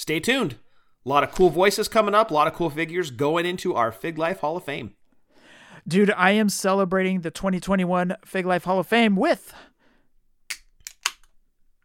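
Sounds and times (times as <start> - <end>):
speech: 0.0 - 5.0, 5.8 - 9.7
can of Purple Haze Bang drink cracking open with fizzing hiss: 10.5 - 11.8.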